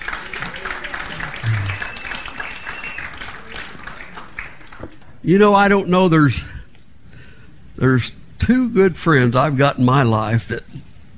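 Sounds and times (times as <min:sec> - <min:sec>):
audience applauding: 0:00.0 - 0:04.8
speech: 0:05.2 - 0:06.5, 0:07.8 - 0:10.9.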